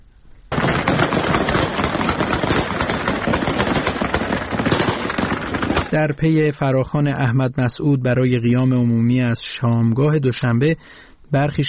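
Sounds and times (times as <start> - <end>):
heavy gunfire from fighters dispersing protesters: 0.5 - 6.0
speech: 6.0 - 11.6.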